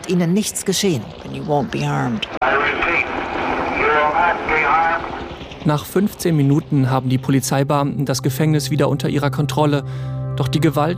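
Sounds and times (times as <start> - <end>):
helicopter droning overhead during a prison riot: 0.0 - 8.3
speech: 0.1 - 2.8, 5.6 - 10.9
distorted amplified voice through a helicopter loudspeaker: 1.8 - 3.1, 3.8 - 5.1.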